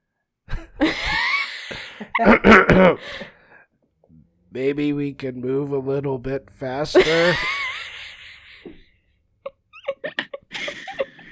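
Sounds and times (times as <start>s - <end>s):
laughter: 0.5s - 3.3s, 6.9s - 11.3s
loud raspy throat clearing with hacking: 2.2s - 3.0s
speech: 2.2s - 3.3s, 4.5s - 7.6s.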